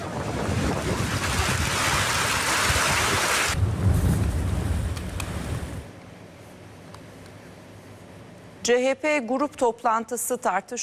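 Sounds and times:
buffeting wind noise: 0.0 - 5.9
sudden heavy downpour flooding city streets: 0.0 - 5.9
speech: 8.7 - 10.8.

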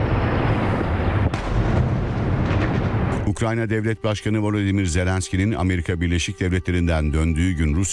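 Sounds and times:
explosions outside during missile and drone attack: 0.0 - 3.3
speech: 3.4 - 7.9.

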